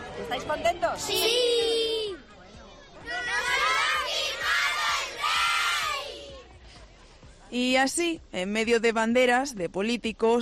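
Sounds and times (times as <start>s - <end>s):
speech: 0.2s - 1.8s, 7.5s - 10.4s
group of children shouting and cheering: 1.0s - 6.5s.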